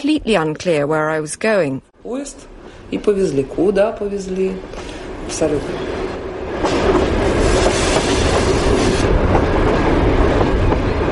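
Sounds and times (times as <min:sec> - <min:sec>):
speech: 0:00.0 - 0:06.0
prison train rumbling along the rails: 0:02.0 - 0:11.1.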